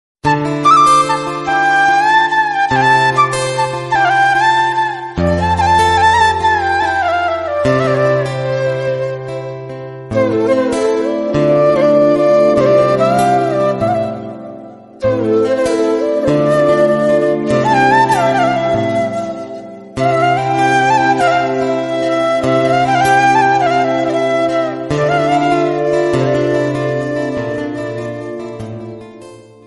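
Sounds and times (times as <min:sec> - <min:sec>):
sad flute background music: 0:00.2 - 0:29.6.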